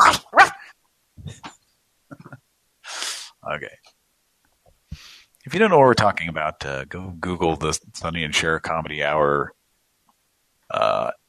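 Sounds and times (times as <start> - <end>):
person imitating a dog barking: 0.0 - 1.5
speech: 3.5 - 4.0, 5.5 - 9.6.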